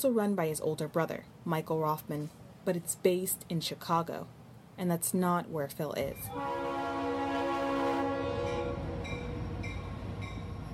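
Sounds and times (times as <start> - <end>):
speech: 0.0 - 6.8
passing train horn blast: 6.3 - 9.6.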